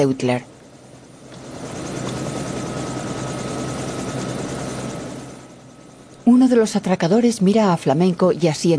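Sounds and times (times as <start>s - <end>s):
speech: 0.0s - 0.5s, 6.3s - 8.7s
helicopter engine and rotor running: 0.0s - 8.7s.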